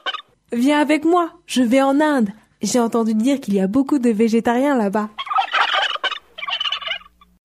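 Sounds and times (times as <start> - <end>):
turkey gobbling: 0.0 - 0.4, 5.2 - 7.3
speech: 0.5 - 5.2.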